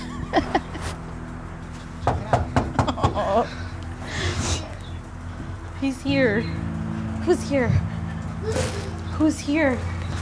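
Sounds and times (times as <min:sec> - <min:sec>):
low hum: 0:00.0 - 0:10.1
sharp knocking on a door: 0:02.0 - 0:03.3
speech: 0:05.8 - 0:06.6, 0:07.2 - 0:07.8, 0:08.4 - 0:09.9.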